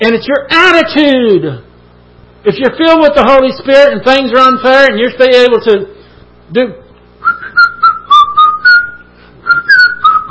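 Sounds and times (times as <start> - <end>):
speech: 0.0 - 1.7, 2.4 - 6.8
person whistling a bright bouncy tune: 7.2 - 10.2.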